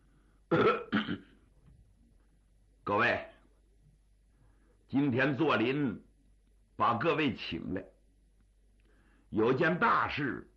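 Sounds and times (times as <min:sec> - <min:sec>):
speech: 0:00.5 - 0:01.2, 0:02.9 - 0:03.3, 0:04.9 - 0:06.1, 0:06.8 - 0:07.9, 0:09.3 - 0:10.5
throat clearing: 0:00.5 - 0:01.4.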